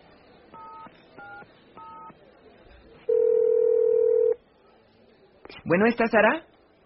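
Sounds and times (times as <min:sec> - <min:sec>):
telephone line ringing tone: 0:03.1 - 0:04.4
speech: 0:05.7 - 0:06.5.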